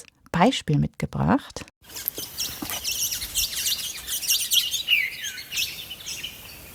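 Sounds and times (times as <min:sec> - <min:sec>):
speech: 0:00.0 - 0:02.6
birds chirping and twittering at a canyon waterhole: 0:01.9 - 0:06.7.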